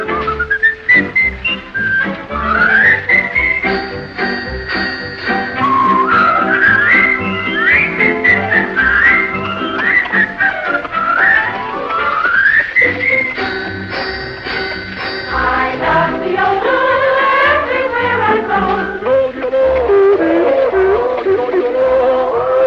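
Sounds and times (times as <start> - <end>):
person whistling a bright lilting melody: 0.0 - 14.5, 19.0 - 22.6
steady instrumental accompaniment: 0.0 - 22.6.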